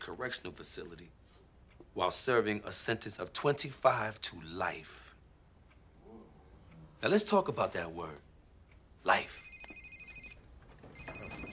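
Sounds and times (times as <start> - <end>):
speech: 0.0 - 1.3, 2.0 - 5.1, 7.0 - 8.3, 9.0 - 9.5
phone ringing with high-pitched electronic bursts: 9.3 - 11.5.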